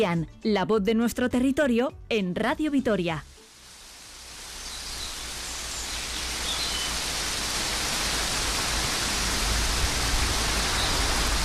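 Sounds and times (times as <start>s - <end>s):
speech: 0.0s - 3.3s
steady rain at midday: 3.3s - 11.4s.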